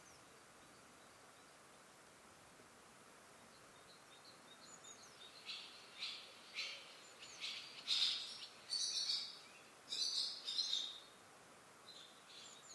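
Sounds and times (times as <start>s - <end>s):
soft steady hiss: 0.0s - 12.7s
bird chirping: 3.4s - 11.1s, 11.8s - 12.7s.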